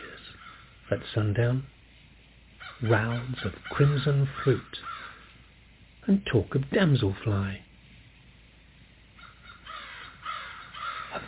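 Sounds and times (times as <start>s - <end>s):
faint outdoor background: 0.0s - 11.2s
crows cawing: 0.1s - 0.9s, 2.6s - 5.5s, 9.2s - 11.2s
speech: 0.9s - 1.8s, 2.8s - 4.9s, 6.0s - 7.6s.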